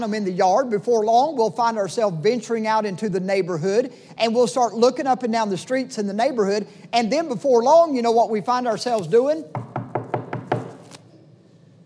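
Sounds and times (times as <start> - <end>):
speech: 0.0 - 9.7
quick knocking on a wooden door: 9.5 - 10.8.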